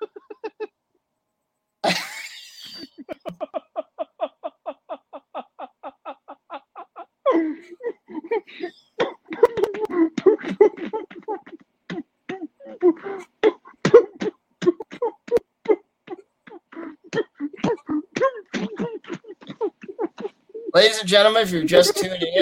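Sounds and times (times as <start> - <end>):
prolonged coughing fit: 1.8 - 3.4, 8.6 - 20.3
speech: 20.8 - 22.3.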